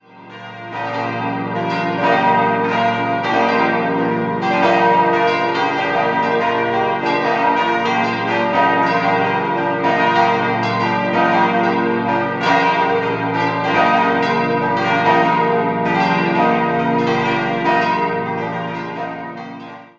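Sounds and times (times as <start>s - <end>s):
church bells of Pfarrkirche St. Laurentius in Mühldorf am Inn-Altmühldorf: 0.0s - 19.9s.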